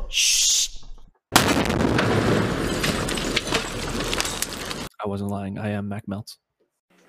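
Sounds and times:
speech: 0.1 - 0.5, 5.1 - 6.5
grenade explosion: 1.3 - 4.9.

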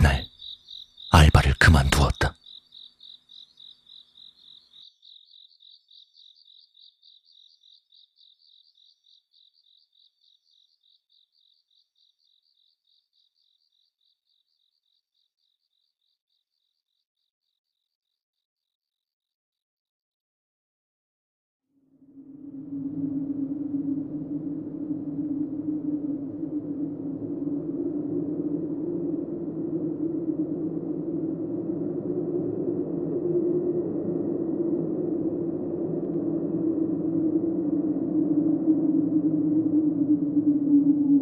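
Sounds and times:
cricket chirping in a basement PC room internet café: 0.0 - 19.0, 21.8 - 41.2
speech: 1.4 - 2.4
low rumble: 22.1 - 41.2.

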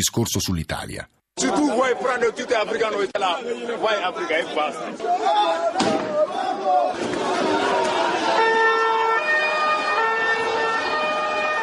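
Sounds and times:
speech: 0.0 - 8.4
loud chaotic crowd during a street riot in Rosarno Italy: 1.4 - 11.6
people shouting: 5.0 - 8.6
emergency sirens wailing: 7.8 - 11.6.

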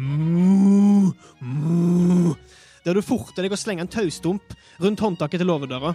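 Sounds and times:
cows mooing anxiously in a barn: 0.0 - 2.4
speech: 2.8 - 5.9.

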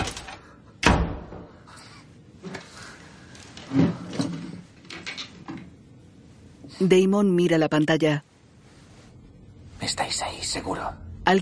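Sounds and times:
apartment door shutting with a thud: 0.8 - 1.5
speech: 6.8 - 8.3, 9.9 - 11.4.

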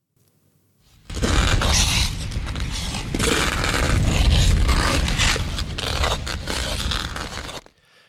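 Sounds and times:
ice skate blades scraping and creaking across ice: 0.9 - 7.8.

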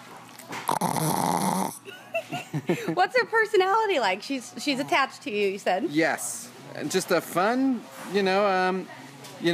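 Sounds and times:
female dog snoring: 0.6 - 1.8
laughter: 1.8 - 3.1
speech: 2.7 - 9.5.

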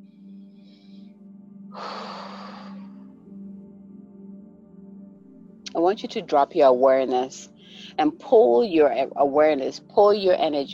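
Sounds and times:
low musical drone: 0.0 - 10.7
deep breath in during a guided meditation: 0.6 - 3.1
speech: 5.8 - 10.7.

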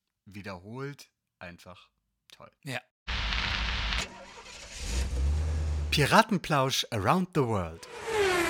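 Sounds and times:
speech: 0.3 - 2.9, 5.9 - 8.1
taxi engine in Paris cranking, starting and revving: 3.5 - 6.0, 7.9 - 8.4.

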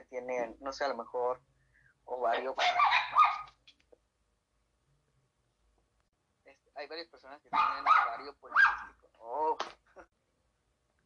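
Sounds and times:
speech: 0.1 - 1.5, 2.1 - 3.3, 6.8 - 10.2
dog barking: 2.5 - 3.6, 7.5 - 9.0.

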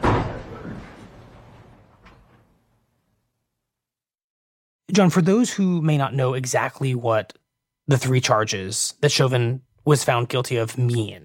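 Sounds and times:
heavy courtroom door swinging shut: 0.0 - 2.8
speech: 4.9 - 11.2.

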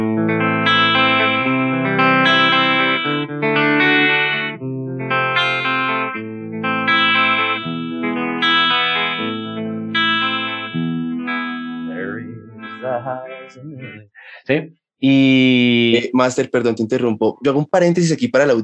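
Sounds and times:
electric guitar playing distorted chorus-processed chords live: 0.0 - 14.2
speech: 13.5 - 18.6.

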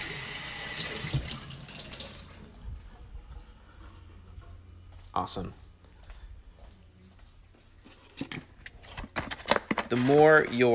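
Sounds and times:
running tap water rinsing resin out of a bottle: 1.0 - 2.3
speech: 5.2 - 5.6, 9.9 - 10.7.

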